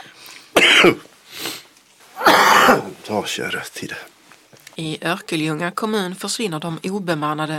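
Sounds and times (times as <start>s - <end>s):
person coughing in a coughing fit: 0.6s - 1.0s, 2.2s - 3.0s
speech: 0.8s - 1.1s, 3.1s - 4.2s, 4.8s - 7.5s.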